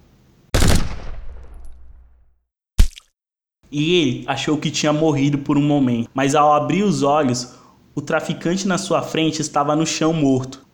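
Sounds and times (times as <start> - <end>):
M4 rifle gunshots with tail: 0.6 - 1.9
speech: 3.7 - 10.7.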